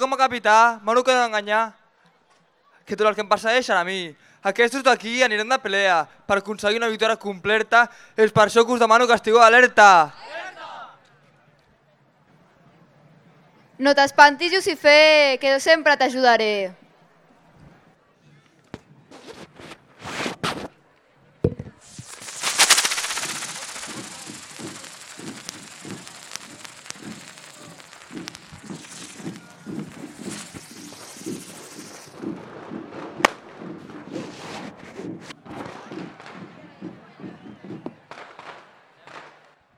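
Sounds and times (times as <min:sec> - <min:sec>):
speech: 0:00.0 - 0:01.8, 0:02.9 - 0:10.4, 0:13.8 - 0:16.8
firecracker bangs at a festival: 0:21.5 - 0:34.3
crackling hissing roar of fireworks: 0:21.8 - 0:32.2.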